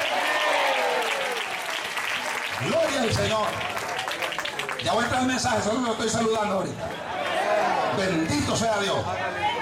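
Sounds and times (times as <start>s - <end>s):
congregation applauding during a church service: 0.0s - 5.8s
speech: 2.6s - 3.8s, 4.8s - 7.1s, 8.0s - 9.5s.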